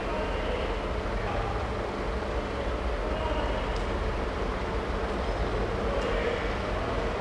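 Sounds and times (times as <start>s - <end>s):
industrial noise: 0.0s - 7.1s.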